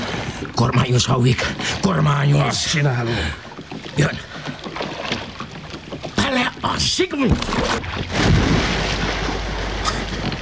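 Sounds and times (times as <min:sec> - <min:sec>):
water surge pouring into a small boat during a whale attack: 0:00.0 - 0:10.3
speech: 0:00.4 - 0:04.5, 0:06.3 - 0:08.5
heavy splash: 0:07.2 - 0:10.3.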